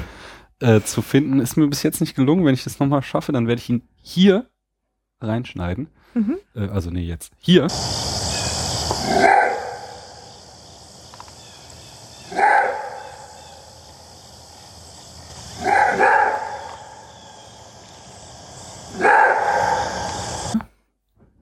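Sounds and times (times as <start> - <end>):
speech: 0.6 - 4.5, 5.2 - 8.1, 9.0 - 9.5
steady hiss of noise: 7.4 - 20.8
maned wolf giving loud hoarse barking calls: 8.9 - 10.4, 12.0 - 14.0, 15.2 - 17.7, 18.8 - 20.5.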